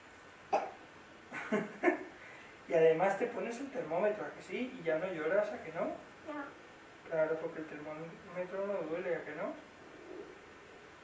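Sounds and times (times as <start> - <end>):
small child coughing softly: 0.5 - 0.8
speech: 1.5 - 2.0, 2.7 - 9.7.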